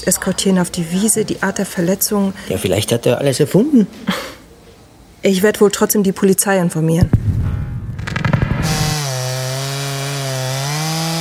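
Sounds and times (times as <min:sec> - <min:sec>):
speech: 0:00.0 - 0:04.4, 0:05.2 - 0:07.3
chainsaw running behind a barn on a farm: 0:08.8 - 0:11.1.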